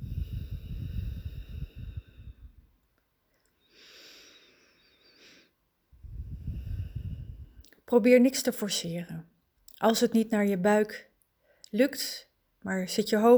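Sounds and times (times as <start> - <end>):
breathing out through the nose: 0.0 - 2.6, 3.6 - 5.6, 6.2 - 7.6
speech: 7.9 - 11.1, 11.7 - 13.3.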